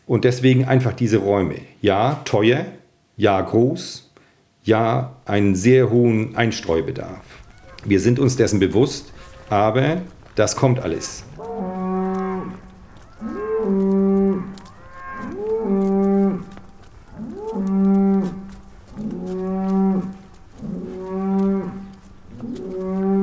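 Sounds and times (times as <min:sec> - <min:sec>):
speech: 0:00.1 - 0:11.7
cows mooing returning home from pasture: 0:07.4 - 0:23.2.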